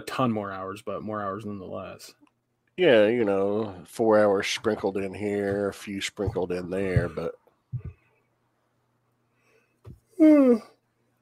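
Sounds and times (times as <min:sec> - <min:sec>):
speech: 0:00.0 - 0:02.2, 0:02.8 - 0:07.9, 0:10.2 - 0:10.7
person yawning: 0:10.1 - 0:10.8.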